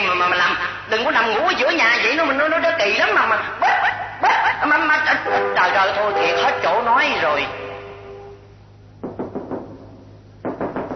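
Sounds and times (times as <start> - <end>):
low steady hum: 0.0 - 10.9
speech: 0.9 - 4.0, 4.6 - 7.7
knocking on a door: 9.0 - 10.9.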